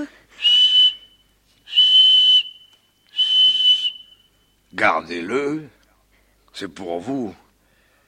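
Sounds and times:
small whistle being blown: 0:00.4 - 0:04.6
speech: 0:04.8 - 0:05.8, 0:06.6 - 0:07.4.

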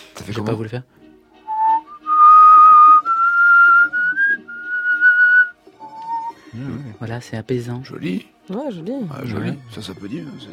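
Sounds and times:
speech: 0:00.2 - 0:01.0, 0:06.6 - 0:10.5
person whistling a slow sustained melody: 0:01.4 - 0:06.4.

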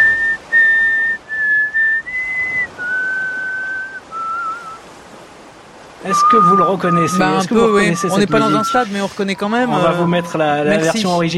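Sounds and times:
man whistling a short clear melody: 0:00.0 - 0:04.8, 0:06.0 - 0:09.0
laughter: 0:06.1 - 0:11.3
speech: 0:06.1 - 0:11.3.

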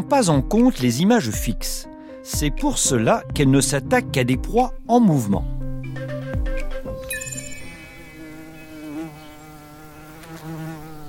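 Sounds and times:
speech: 0:00.0 - 0:05.6
fly buzzing: 0:07.4 - 0:11.0.

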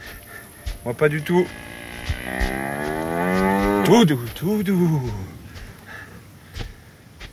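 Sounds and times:
speech: 0:00.8 - 0:02.7, 0:03.8 - 0:05.3
cow mooing: 0:01.5 - 0:04.0.

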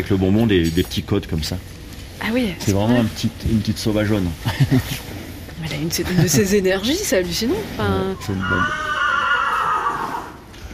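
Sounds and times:
speech: 0:00.0 - 0:08.9
laughter: 0:04.4 - 0:05.1
horse neighing: 0:08.1 - 0:10.5.

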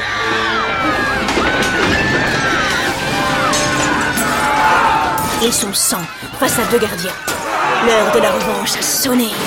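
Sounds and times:
crowd of rioting boys shouting and cheering: 0:00.0 - 0:09.0
plates, cutlery, tables and benches crashing and shattering in a riot: 0:00.7 - 0:05.7
speech: 0:05.4 - 0:09.4.

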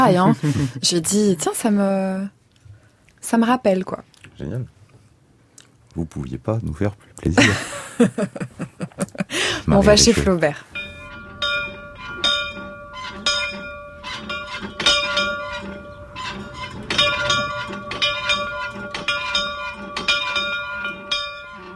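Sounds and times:
speech: 0:00.0 - 0:02.4, 0:03.2 - 0:04.8, 0:06.0 - 0:10.8
laughter: 0:00.1 - 0:00.8, 0:07.3 - 0:10.4
old museum bell rung frantically by hand: 0:09.8 - 0:21.7.

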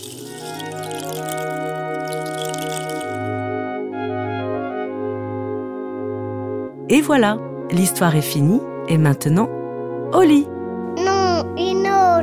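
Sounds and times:
rain stick pouring cascade of rattling beads: 0:00.0 - 0:03.4
sustained melodic music: 0:00.0 - 0:12.2
speech: 0:06.9 - 0:10.5.

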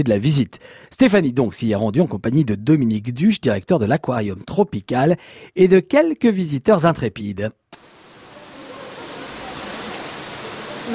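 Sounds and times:
speech: 0:00.0 - 0:07.8
stream water rushing in a crocodile enclosure at a tropical aquarium: 0:07.8 - 0:10.9.

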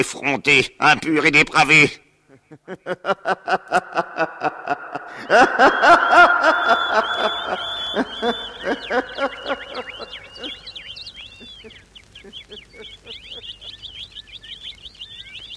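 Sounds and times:
speech: 0:00.0 - 0:10.2
laughter: 0:02.4 - 0:10.8
chorus of birds chirping and trilling: 0:03.3 - 0:15.5.

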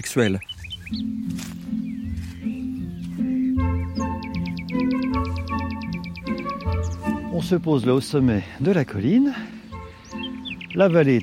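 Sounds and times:
speech: 0:00.0 - 0:01.8, 0:07.4 - 0:09.5, 0:10.8 - 0:11.2
birds singing on a hilltop above a valley: 0:00.0 - 0:11.2.

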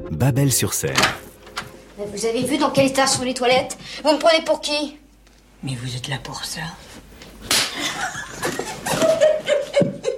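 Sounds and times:
speech: 0:00.2 - 0:01.3, 0:02.0 - 0:05.0, 0:05.6 - 0:06.8
sharp loud slap across the face: 0:07.4 - 0:07.8
laughter: 0:07.7 - 0:10.1.

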